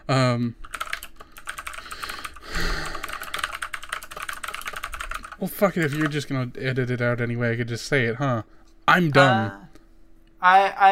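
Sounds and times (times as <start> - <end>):
speech: 0.1 - 0.7, 5.4 - 9.7, 10.4 - 10.9
typing on a computer keyboard: 0.6 - 6.3.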